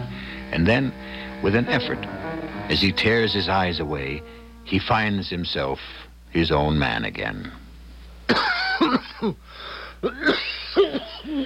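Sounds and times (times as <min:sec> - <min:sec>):
ragged wheezy breaths: 0:00.0 - 0:01.4, 0:09.4 - 0:10.0
speech: 0:00.5 - 0:07.6, 0:08.3 - 0:11.4
harsh racking cough: 0:08.3 - 0:09.4, 0:10.0 - 0:11.4.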